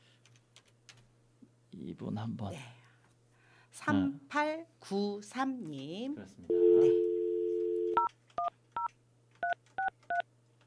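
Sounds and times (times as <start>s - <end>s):
speech: 1.8s - 2.8s, 3.8s - 7.1s
telephone dial tone: 6.5s - 8.1s
telephone keypad beeps as a radio host dials a listener's phone: 7.7s - 10.6s.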